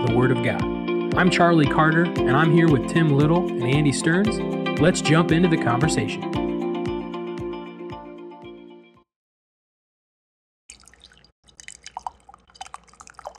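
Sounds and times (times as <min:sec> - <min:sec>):
short tonal musical passage with steady beats: 0:00.1 - 0:08.1
speech: 0:00.2 - 0:06.4
coffee pouring from a carafe with splashes and drips: 0:10.7 - 0:13.3.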